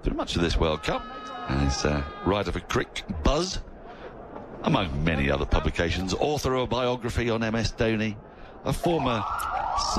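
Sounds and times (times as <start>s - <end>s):
speech: 0.1s - 3.7s, 4.6s - 9.9s
siren marking a no-ball at a cricket match in the Himalayan foothills: 9.0s - 9.9s.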